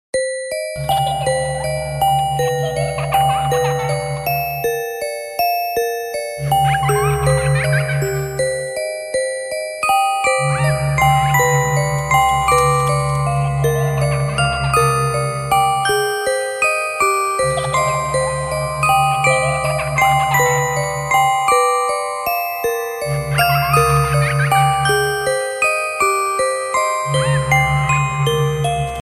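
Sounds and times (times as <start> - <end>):
music box phone tone: 0.2 - 29.0
creepy laughter phone tone: 0.8 - 4.6, 6.5 - 8.5, 10.3 - 16.0, 17.3 - 21.4, 23.3 - 25.0.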